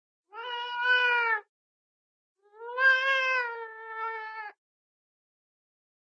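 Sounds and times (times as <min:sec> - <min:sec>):
cartoon lion cub crying: 0:00.3 - 0:01.5, 0:02.4 - 0:04.6.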